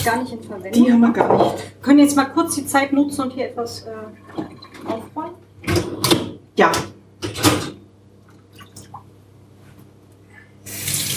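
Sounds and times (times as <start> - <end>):
speech: 0.0 - 6.9
water sloshing and splashing in a bowl as soaked kitchen items are moved: 4.2 - 5.2, 8.2 - 9.2.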